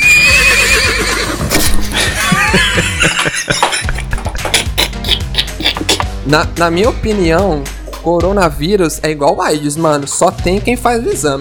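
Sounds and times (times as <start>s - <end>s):
horse neighing: 0.0s - 1.5s
laughter: 1.9s - 6.0s
speech: 6.3s - 11.3s.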